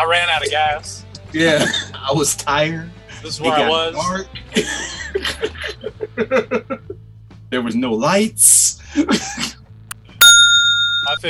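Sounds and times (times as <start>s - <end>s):
speech: 0.1s - 9.6s, 11.1s - 11.2s
laughter: 4.2s - 7.0s, 8.8s - 9.6s
bell ringing: 10.2s - 11.2s.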